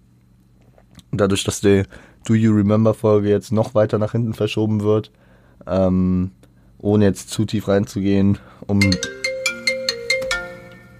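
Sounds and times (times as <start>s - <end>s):
speech: 1.1s - 9.2s
mobile phone ringtone with bright electronic melody: 8.8s - 10.9s.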